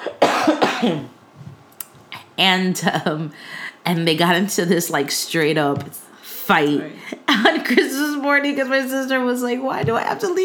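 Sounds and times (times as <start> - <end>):
person coughing harshly: 0.0 - 1.2
speech: 0.8 - 1.2, 2.4 - 10.4.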